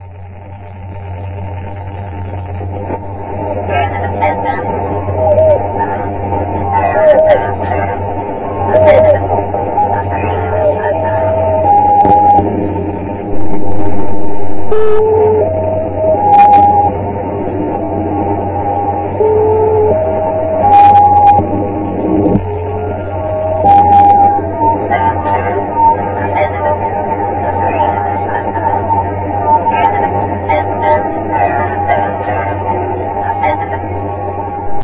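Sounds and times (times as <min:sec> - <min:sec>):
radio sound: 0:00.0 - 0:34.8.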